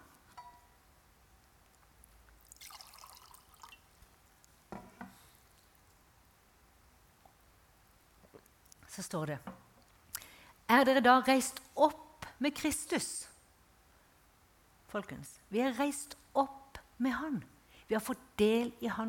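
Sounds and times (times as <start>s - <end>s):
person sipping water: 2.1s - 3.9s, 8.2s - 8.8s
speech: 9.0s - 9.6s, 10.7s - 13.3s, 14.9s - 19.0s.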